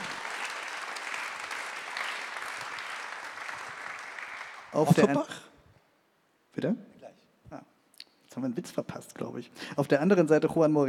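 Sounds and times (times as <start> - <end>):
room full of people clapping: 0.0 - 5.0
speech: 4.7 - 5.5, 6.6 - 6.9, 8.4 - 10.8.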